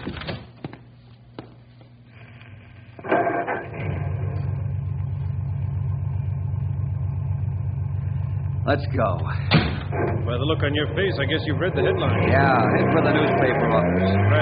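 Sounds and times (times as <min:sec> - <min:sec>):
car engine cranking, starting and idling: 0:03.0 - 0:14.4
speech: 0:08.7 - 0:14.4.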